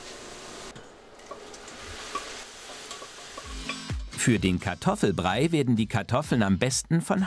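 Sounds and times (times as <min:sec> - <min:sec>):
scrape of stirring in a pan: 0:00.0 - 0:03.9
minced lamb searing in a hot pan: 0:00.0 - 0:04.2
speech: 0:04.2 - 0:07.2.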